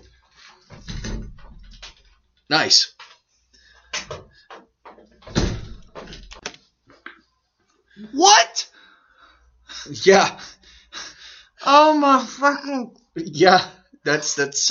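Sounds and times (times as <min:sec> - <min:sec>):
person beating his head against a studio door: 0:00.7 - 0:01.8, 0:04.0 - 0:06.3
speech: 0:02.5 - 0:03.0, 0:09.9 - 0:10.4, 0:11.7 - 0:14.6.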